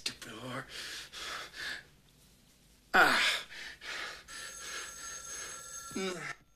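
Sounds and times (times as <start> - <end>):
speech: 0.5 - 1.2
heavy breathing: 0.7 - 1.9, 3.0 - 5.8
electronic telephone trill in the main room: 4.2 - 6.5.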